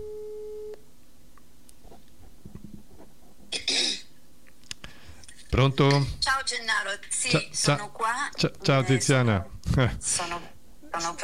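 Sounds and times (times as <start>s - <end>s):
telephone ringback tone as an outgoing call is placed: 0.0s - 0.8s
speech: 5.6s - 11.2s.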